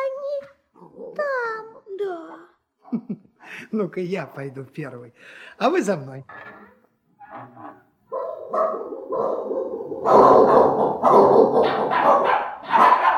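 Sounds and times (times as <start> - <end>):
speech: 2.9 - 6.6
giant dog and bandy-legged snub-nosed dog barking and yapping: 8.1 - 13.1.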